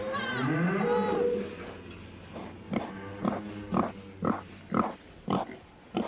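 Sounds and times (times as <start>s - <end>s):
cow mooing: 0.0s - 1.8s, 2.6s - 4.9s
animals grunting and snorting in a barn: 0.0s - 6.0s.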